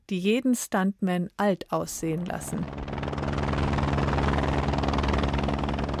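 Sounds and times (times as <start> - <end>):
speech: 0.1 - 3.0
helicopter approaching mountain summit: 2.2 - 5.9.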